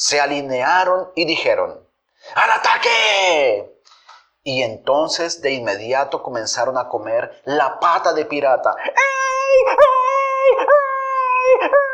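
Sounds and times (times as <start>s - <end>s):
speech: 0.0s - 3.8s, 4.4s - 10.8s, 11.6s - 11.9s
injured puppy howling while trying to get out of a river: 9.0s - 11.9s.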